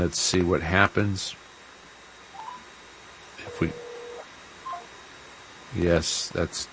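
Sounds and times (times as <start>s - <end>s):
speech: 0.0s - 1.4s, 3.6s - 3.8s, 5.7s - 6.7s
quiet hiss: 0.0s - 6.7s
faint telephone keypad beeps: 2.4s - 2.6s, 3.5s - 4.9s
sustained telephone tone: 2.4s - 2.7s, 3.4s - 4.9s.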